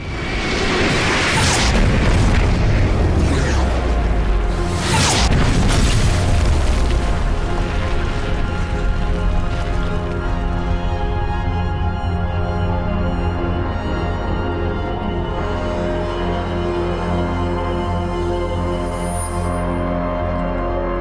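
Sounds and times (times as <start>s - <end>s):
dramatic orchestral film score music: 0.0s - 20.9s
heavy explosions booming: 0.7s - 10.0s.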